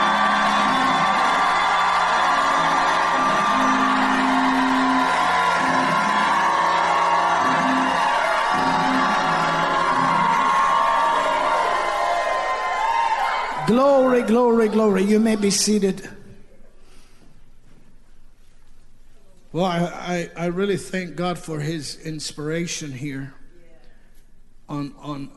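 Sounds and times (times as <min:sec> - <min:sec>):
sustained yells: 0:00.0 - 0:15.2
large crowd shouting, whooping and cheering: 0:00.0 - 0:16.0
speech: 0:13.8 - 0:16.2, 0:19.6 - 0:23.4, 0:24.7 - 0:25.3.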